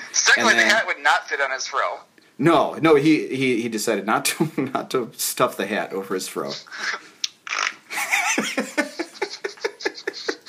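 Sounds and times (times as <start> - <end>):
speech: 0.3 - 7.1, 8.4 - 8.8
short raspy fart: 7.4 - 7.8
rhythmic breathy laughter in quick bursts: 7.9 - 10.4.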